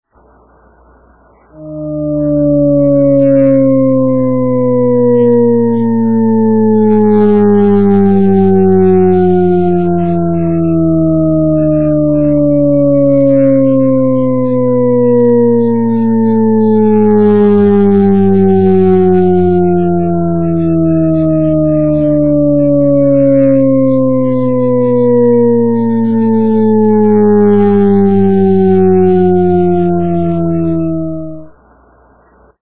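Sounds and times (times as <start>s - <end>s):
descending auditory illusion tone: 1.4s - 31.6s.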